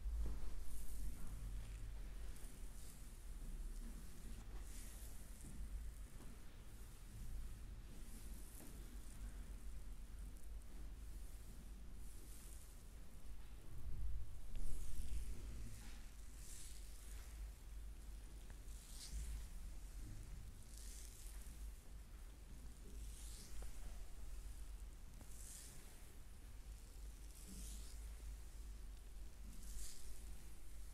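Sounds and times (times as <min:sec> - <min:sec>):
hands brushing over a body in a massage: 0:00.1 - 0:13.6, 0:14.5 - 0:26.4, 0:27.2 - 0:30.9.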